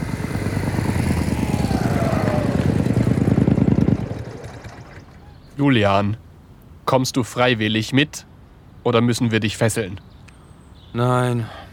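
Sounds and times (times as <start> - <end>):
vehicle engine accelerating: 0.0 - 5.3
speech: 5.6 - 6.2, 6.9 - 10.1, 10.9 - 11.6.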